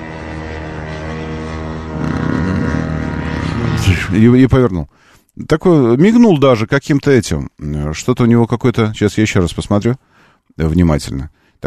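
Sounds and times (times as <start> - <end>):
flying aircraft engine droning overhead: 0.0 - 4.2
speech: 4.1 - 11.6.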